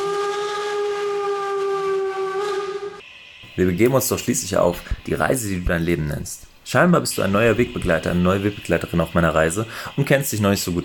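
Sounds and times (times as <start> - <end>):
train whistle: 0.0 - 3.5
train rumble: 0.0 - 10.8
speech: 3.6 - 10.8.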